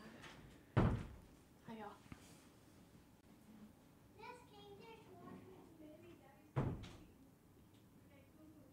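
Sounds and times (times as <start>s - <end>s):
door thumping shut with a solid bang: 0.8s - 1.2s, 6.6s - 7.0s.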